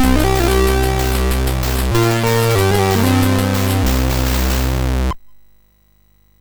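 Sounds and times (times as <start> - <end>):
chiptune game music on a MOS6581R2 SID chip: 0.0 - 5.1.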